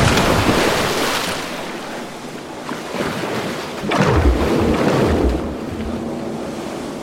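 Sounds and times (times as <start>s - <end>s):
person with tied hands splashing into the sea from a ship: 0.0s - 6.0s
gusty wind: 0.0s - 7.0s
rushing water: 0.0s - 7.0s
surging sea waves: 0.0s - 7.0s.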